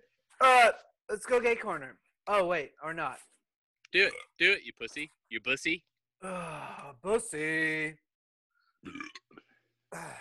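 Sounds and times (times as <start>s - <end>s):
speech: 0.6s - 8.0s, 8.8s - 10.1s
loud gurgling and rasping burps: 4.0s - 4.4s, 8.8s - 10.1s.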